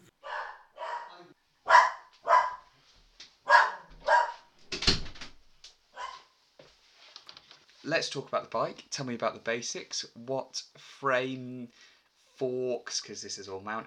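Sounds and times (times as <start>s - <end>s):
dog barking: 0.2s - 2.7s, 3.5s - 4.5s, 6.0s - 6.3s
speech: 7.9s - 13.8s.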